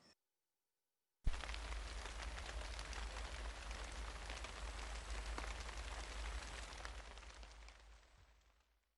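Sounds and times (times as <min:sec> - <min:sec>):
light rain pattering: 0:01.3 - 0:08.9.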